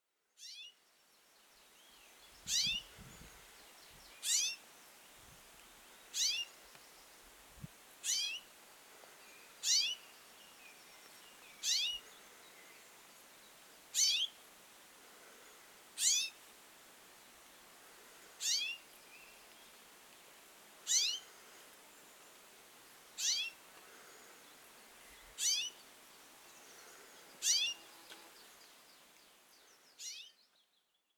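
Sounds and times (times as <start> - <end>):
rosefinch calling: 2.5 - 3.2, 4.2 - 4.6, 6.2 - 6.5, 8.1 - 8.4, 9.6 - 10.0, 11.6 - 12.0, 16.0 - 16.4, 18.4 - 18.8, 20.9 - 21.2, 23.2 - 23.6, 25.3 - 25.8, 27.4 - 27.8, 30.0 - 30.4.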